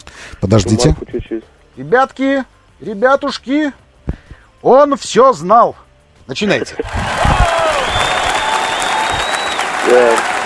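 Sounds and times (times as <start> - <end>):
speech: 0.4 - 3.8, 4.6 - 7.1, 9.9 - 10.4
sparse unenthusiastic clapping from a small group: 6.8 - 10.4
faint whistling tones: 7.6 - 9.7.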